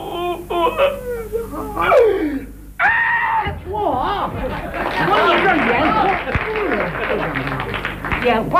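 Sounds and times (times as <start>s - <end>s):
storyteller performing crying with sobs and wails in traditional Chinese storytelling: 0.0s - 3.5s
speech: 0.6s - 2.4s, 8.2s - 8.5s
laughter: 3.8s - 7.9s.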